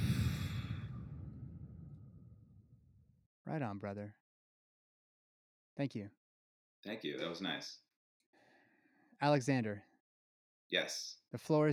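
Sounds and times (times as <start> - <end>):
deep meditative breath exhaled: 0.0 - 2.7
speech: 3.5 - 4.2, 5.8 - 6.2, 6.8 - 7.8, 9.2 - 9.9, 10.7 - 11.7.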